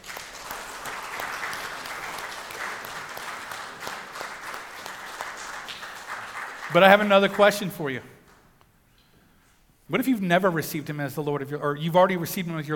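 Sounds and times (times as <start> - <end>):
large crowd applauding: 0.0 - 8.0
speech: 6.7 - 8.2, 9.9 - 12.7.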